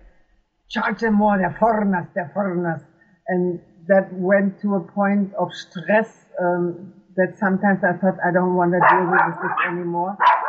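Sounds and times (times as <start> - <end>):
speech: 0.7 - 10.3
dogs barking: 8.8 - 10.4.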